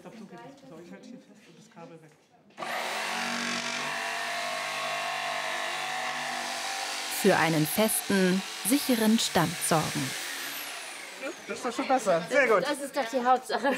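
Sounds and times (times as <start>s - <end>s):
speech: 0.5s - 3.0s, 7.2s - 10.2s, 11.4s - 13.7s
electric circular saw running: 2.6s - 12.4s.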